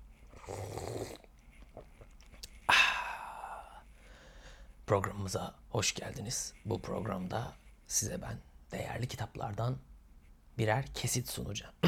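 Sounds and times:
person slurping a sip of hot tea: 0.3 - 2.5
breathy satisfied exhale: 2.7 - 4.7
speech: 4.9 - 9.9, 10.6 - 11.8.

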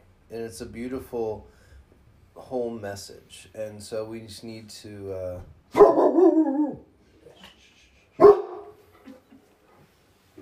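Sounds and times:
speech: 0.3 - 1.6, 2.4 - 6.5
dog barking at someone arriving at a home: 5.7 - 6.7, 8.2 - 8.8.

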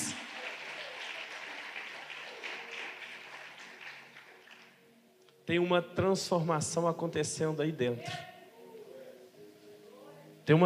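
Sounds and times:
audience applauding in a large room: 0.0 - 5.0
speech: 5.5 - 8.3, 10.5 - 10.6.

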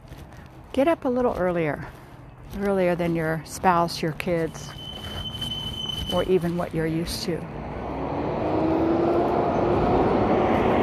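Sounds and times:
speech: 0.8 - 4.8, 6.1 - 7.6
big truck rumbling past: 4.5 - 10.8.

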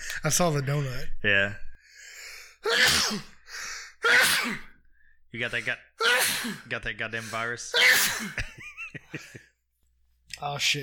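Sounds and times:
speech: 0.2 - 1.7, 2.6 - 3.4, 4.4 - 4.7, 5.3 - 9.5, 10.4 - 10.8
person sneezing: 2.6 - 3.4, 4.0 - 4.8, 6.0 - 6.7, 7.7 - 8.4.

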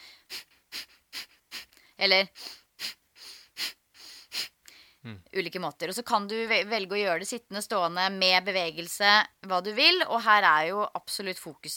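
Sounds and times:
sharp forceful exhalations through the nose: 0.0 - 5.3
speech: 2.0 - 2.6, 5.0 - 11.7.

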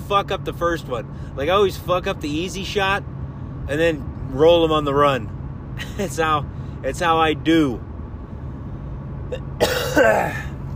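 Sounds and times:
speech: 0.1 - 7.9, 9.3 - 10.5
person harshly clearing throat with a short cough: 9.3 - 10.6.

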